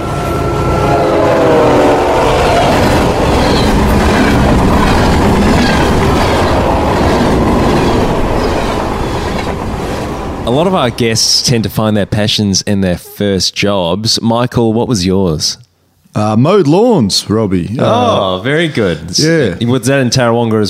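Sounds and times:
freight train horn blaring: 0.0 - 5.0
freight train passing with wheels clattering: 0.0 - 12.6
speech: 10.5 - 15.6, 16.2 - 20.6.

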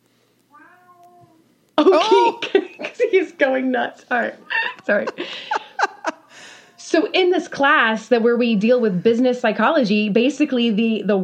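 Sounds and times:
cat meowing: 0.5 - 1.4
laughter: 1.8 - 3.3, 4.5 - 6.6
speech: 3.1 - 5.5, 7.0 - 11.2.

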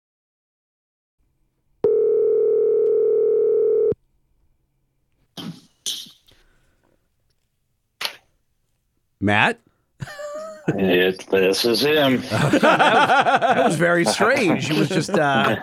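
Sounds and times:
telephone dial tone: 1.8 - 4.0
speech: 9.2 - 15.6
laughter: 10.0 - 15.6.

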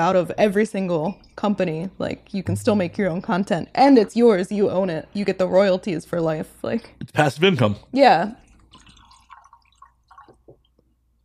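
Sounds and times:
speech: 0.0 - 8.4
liquor glugging from a bottle in a steady pour: 8.4 - 10.8.

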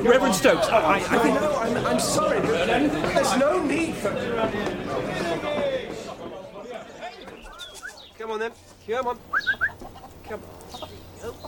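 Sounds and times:
speech: 0.0 - 5.7, 8.3 - 9.6, 10.3 - 10.6
chickens clucking: 7.2 - 11.4.

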